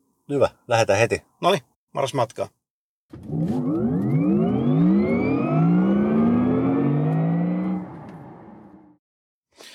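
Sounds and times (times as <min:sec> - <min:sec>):
speech: 0:00.3 - 0:03.6
car pulling away on a test drive and accelerating hard: 0:03.2 - 0:09.0.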